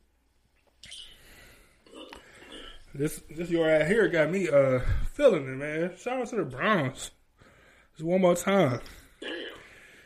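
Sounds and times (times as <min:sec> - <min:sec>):
speech: 0:03.0 - 0:07.2, 0:08.0 - 0:09.0
abrupt throaty hiccups: 0:09.2 - 0:09.7.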